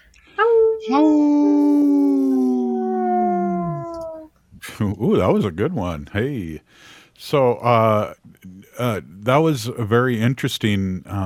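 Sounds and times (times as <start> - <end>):
speech: 0.8 - 1.2, 4.8 - 11.2
wolf howling: 1.4 - 4.3.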